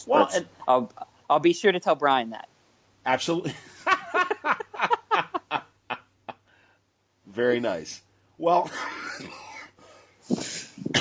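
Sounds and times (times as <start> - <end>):
speech: 0.0 - 3.7, 7.4 - 9.4
laughter: 3.4 - 6.0
breathy noise: 8.7 - 11.0
person coughing: 10.5 - 11.0.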